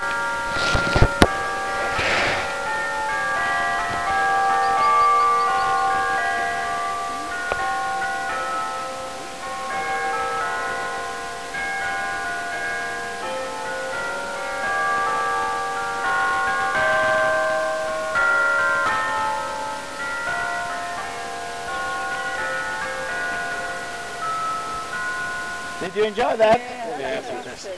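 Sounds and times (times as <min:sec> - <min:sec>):
church bells in Madeira: 0:00.0 - 0:27.7.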